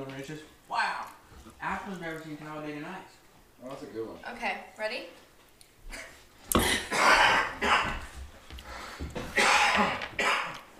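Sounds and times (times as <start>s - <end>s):
speech: 0.2s - 5.2s, 9.8s - 10.0s
person coughing with harsh raspy bursts: 6.0s - 8.1s, 9.2s - 10.6s.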